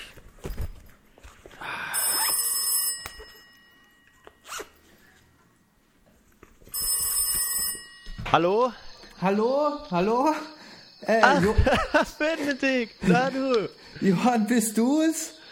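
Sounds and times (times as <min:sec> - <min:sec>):
mobile phone ringtone chiming inside a backpack: 0:02.0 - 0:04.6, 0:06.7 - 0:14.0
backpack zipper being pulled: 0:04.4 - 0:04.7
speech: 0:08.3 - 0:15.4
laughter: 0:11.0 - 0:14.2.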